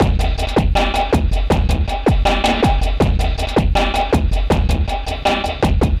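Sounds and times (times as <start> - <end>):
trash hopper beat: 0.0 - 5.9.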